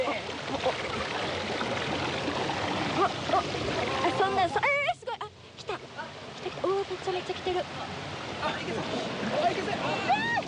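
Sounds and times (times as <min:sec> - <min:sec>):
river water flowing: 0:00.0 - 0:10.4
speech: 0:06.9 - 0:10.4.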